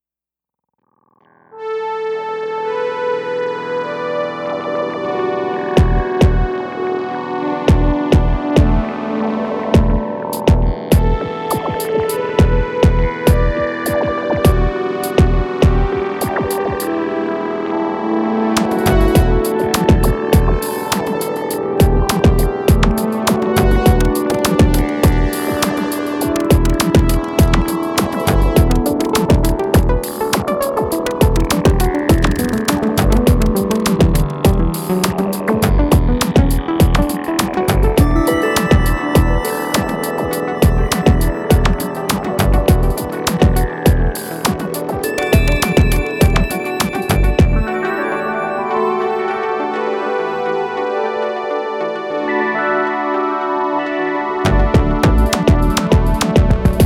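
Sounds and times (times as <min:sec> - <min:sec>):
Prophet 08 synthesizer: 0:01.1 - 0:56.8.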